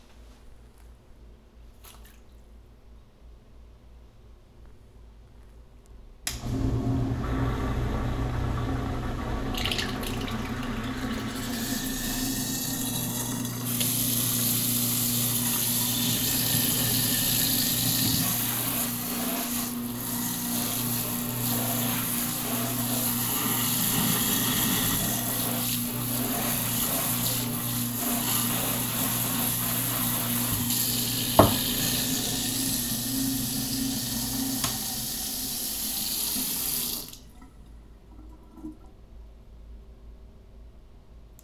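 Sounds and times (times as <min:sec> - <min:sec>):
garbage disposal in a sink: 0:06.4 - 0:39.0.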